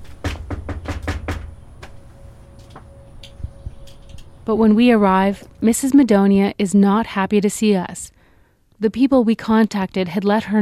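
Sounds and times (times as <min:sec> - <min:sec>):
knocking on a door: 0:00.0 - 0:02.0
speech: 0:04.5 - 0:08.2, 0:08.8 - 0:10.6.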